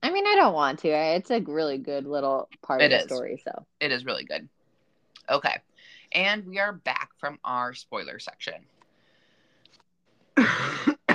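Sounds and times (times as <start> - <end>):
speech: 0.4 - 4.6, 5.3 - 8.7, 10.4 - 11.1
harsh rasping coughs: 10.4 - 11.1.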